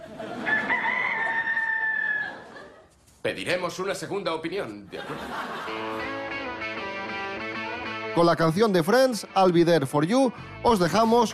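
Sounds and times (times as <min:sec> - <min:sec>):
laughter: 0:00.0 - 0:03.0, 0:04.8 - 0:06.5
rooster crowing: 0:00.3 - 0:02.6
speech: 0:03.3 - 0:06.2, 0:08.2 - 0:11.3.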